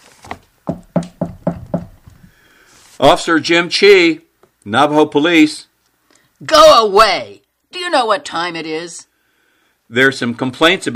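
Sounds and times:
knocking on a camper door: 0.6 - 2.2
speech: 3.0 - 5.7, 6.4 - 9.1, 9.9 - 10.9.

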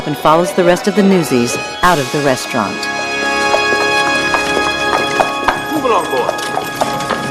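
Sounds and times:
sustained musical backdrop: 0.0 - 7.2
speech: 0.1 - 3.0, 5.8 - 6.4
hooves of a horse-drawn carriage clip-clopping at walking pace: 3.2 - 7.2.

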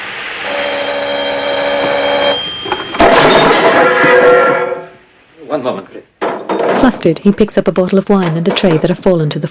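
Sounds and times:
telephone ringing with a steady bright tone: 0.4 - 4.2
speech: 5.6 - 6.1, 6.8 - 9.4.

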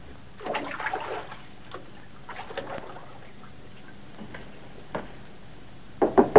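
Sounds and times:
water splashing inside a bathroom: 0.4 - 4.2
man knocking on a bathroom door: 6.0 - 6.3.

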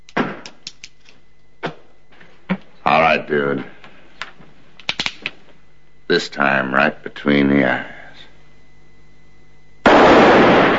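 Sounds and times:
speech: 2.9 - 3.8, 6.1 - 8.0
two gunshots fired at the same time: 9.8 - 10.7.

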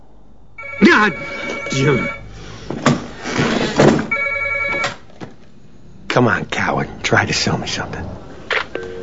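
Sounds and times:
home telephone ringing with electronic trill: 0.6 - 2.3, 4.1 - 5.0, 8.8 - 9.0
speech: 1.0 - 2.8, 6.2 - 8.2.

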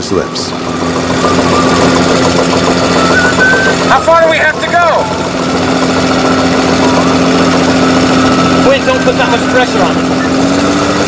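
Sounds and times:
speech: 0.0 - 1.6, 3.9 - 6.3, 8.7 - 11.0
boat engine straining at high RPM: 0.0 - 11.0.

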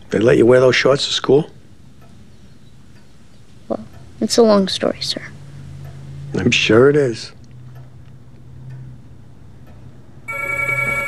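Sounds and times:
low hum: 0.0 - 11.0
speech: 0.1 - 1.6, 3.7 - 5.4, 6.4 - 7.4
telephone ringing with electronic trill: 10.3 - 11.0.

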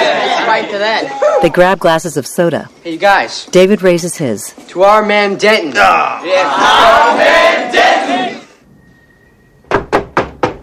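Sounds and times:
speech: 0.6 - 8.2
knocking on a door: 9.7 - 10.6.

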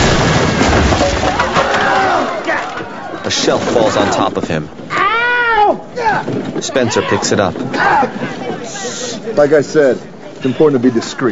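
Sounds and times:
fridge crashing through a flimsy roof: 0.0 - 4.4
people shouting: 1.4 - 3.3, 4.9 - 8.9
speech: 3.4 - 4.9, 6.1 - 11.3.

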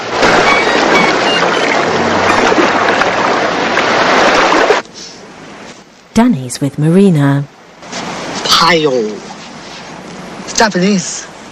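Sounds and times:
shallow water lapping against rocks in a bay: 0.0 - 4.8
speech: 6.2 - 7.5, 8.6 - 9.3, 10.6 - 11.3.

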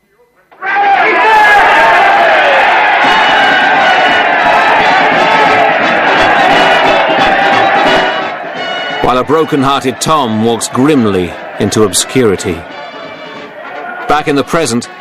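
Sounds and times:
large indoor crowd cheering: 0.5 - 14.9
speech: 9.1 - 12.7, 14.1 - 14.9.

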